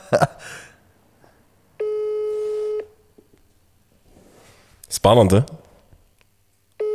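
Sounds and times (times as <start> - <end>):
laughter: 0.0 - 1.8
speech: 0.1 - 0.7, 5.0 - 5.6
telephone ringback tone while a call connects: 1.8 - 3.2, 6.8 - 6.9.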